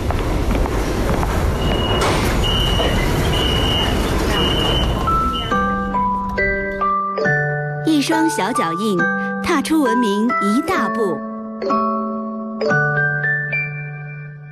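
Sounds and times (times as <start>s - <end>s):
subway train pulling into a platform: 0.0s - 8.4s
speech: 8.1s - 13.2s.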